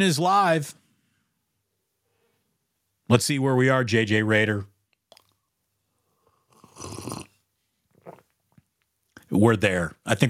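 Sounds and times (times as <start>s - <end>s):
speech: 0.0s - 0.8s, 3.1s - 4.7s, 9.3s - 10.2s
mouth and lip sounds: 4.9s - 5.5s, 7.9s - 8.8s
swallowing: 5.1s - 5.5s, 6.3s - 8.6s
slurping sip of a hot drink: 6.2s - 8.4s.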